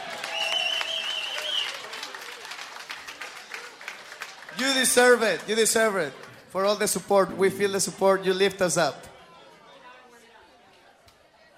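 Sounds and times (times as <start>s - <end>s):
crowd applauding: 0.0s - 7.3s
faint whistle: 0.2s - 1.8s
speech: 4.6s - 9.1s.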